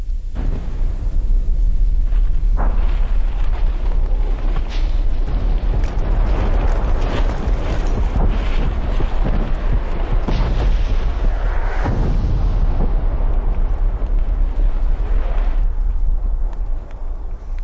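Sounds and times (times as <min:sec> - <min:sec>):
volcanic eruption explosions as the upper vent throws ash: 0:00.0 - 0:17.6.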